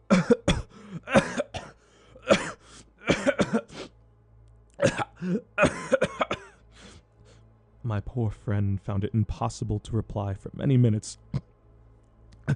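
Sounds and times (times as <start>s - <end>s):
person coughing in a long harsh hacking fit: 0.1s - 3.9s, 4.8s - 6.6s
speech: 7.9s - 11.5s.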